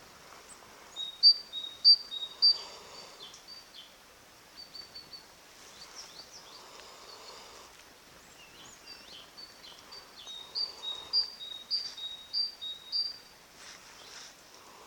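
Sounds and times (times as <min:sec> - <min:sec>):
faint background hiss: 0:00.0 - 0:14.8
Great tit Parus major calls: 0:01.0 - 0:02.6, 0:09.0 - 0:13.3.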